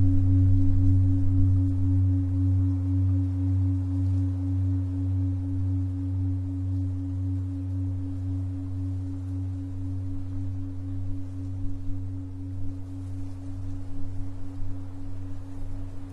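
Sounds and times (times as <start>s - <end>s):
soft rough hiss: 0.0s - 16.1s
steady low tone at 136.1 Hz with higher overtone: 0.0s - 16.1s.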